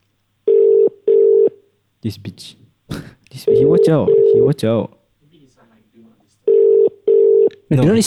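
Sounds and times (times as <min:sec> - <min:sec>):
electronic ringing tone from a phone call: 0:00.5 - 0:01.6, 0:03.5 - 0:04.6, 0:06.5 - 0:07.5
speech: 0:02.0 - 0:02.6, 0:03.4 - 0:05.0, 0:07.7 - 0:08.0.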